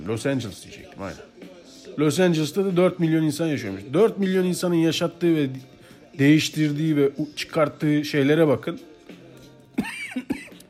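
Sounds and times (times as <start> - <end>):
speech: 0.0 - 1.4, 2.0 - 8.9
harsh coughs: 9.8 - 10.6.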